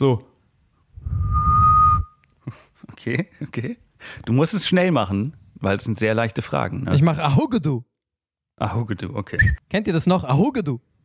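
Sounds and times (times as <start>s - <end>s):
speech: 0.0s - 0.3s, 2.5s - 7.9s, 8.6s - 10.9s
person whistling a high note as a quiz buzzer: 1.0s - 2.2s, 9.4s - 9.6s.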